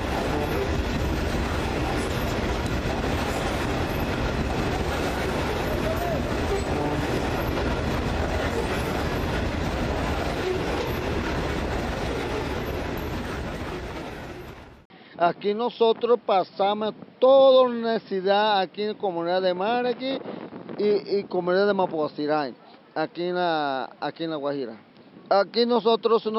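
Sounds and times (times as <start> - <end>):
continuous rail clatter: 0.0 - 14.8
long coal-loaded freight train rumbling past: 0.0 - 14.9
speech: 15.2 - 26.3.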